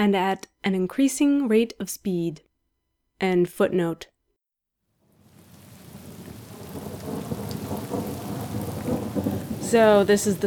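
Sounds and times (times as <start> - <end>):
speech: 0.0 - 2.5, 3.2 - 4.1, 9.7 - 10.4
heavy rain: 5.1 - 10.4
gusting wind: 5.3 - 10.4.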